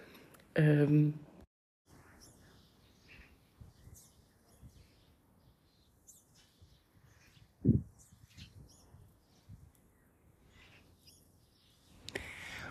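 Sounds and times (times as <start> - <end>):
speech: 0.6 - 1.3
bird chirps and calls in garden: 1.9 - 12.6
wind rushing in garden: 6.9 - 9.7.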